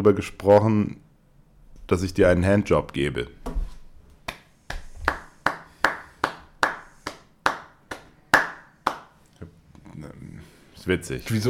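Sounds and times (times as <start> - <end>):
speech: 0.0 - 1.0, 1.9 - 3.4, 10.9 - 11.4
slow hand clapping by one person: 4.2 - 9.3.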